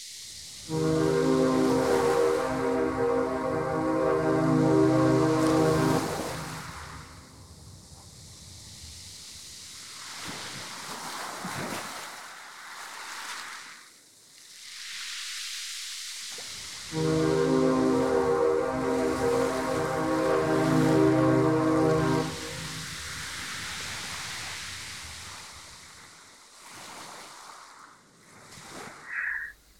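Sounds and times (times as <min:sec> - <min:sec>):
wind by the sea: 0:00.0 - 0:29.7
foghorn blasts by the sea: 0:00.6 - 0:07.6, 0:16.9 - 0:23.8
surf rushing by the sea: 0:00.6 - 0:07.6, 0:16.9 - 0:24.8.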